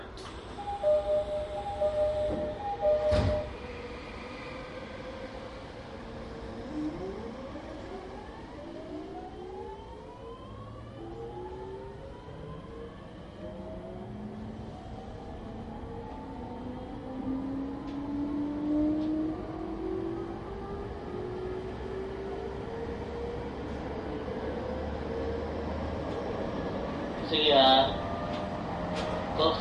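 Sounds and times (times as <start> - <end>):
electric commuter train motors whining: 0.0 - 3.8
electric commuter train rumble: 0.0 - 9.3, 13.4 - 29.5
sharp clunk: 2.3 - 3.5.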